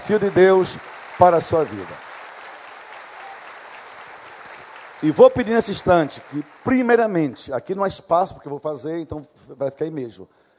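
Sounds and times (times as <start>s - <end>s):
audience applause: 0.0s - 7.8s
speech: 0.1s - 2.0s, 5.0s - 10.4s.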